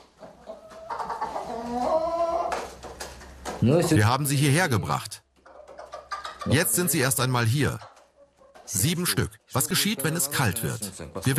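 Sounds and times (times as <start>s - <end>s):
chickens clucking and squawking: 0.0s - 4.0s, 5.3s - 8.9s
speech: 3.6s - 5.2s, 6.4s - 7.9s, 8.7s - 11.3s.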